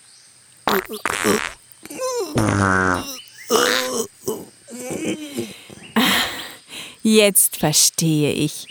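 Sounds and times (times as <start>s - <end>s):
speech: 0.7s - 4.1s, 7.0s - 8.6s
farting: 0.7s - 5.1s.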